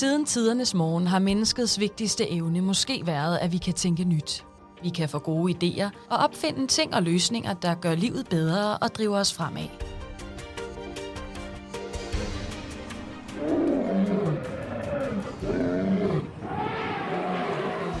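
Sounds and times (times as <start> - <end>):
speech: 0.0 - 10.0
big cats letting out deep rumbling roars in a savanna: 13.4 - 17.9.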